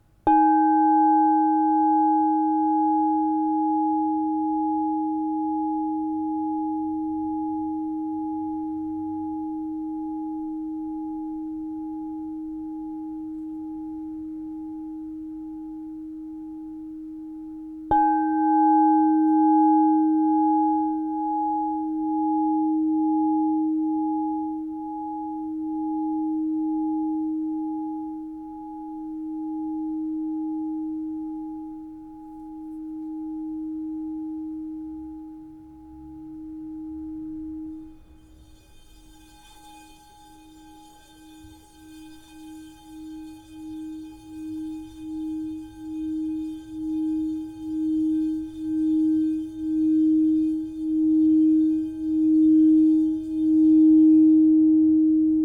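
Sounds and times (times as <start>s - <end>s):
7-inch crystal bowl tuned to D sharp plus 15: 0.0s - 55.4s.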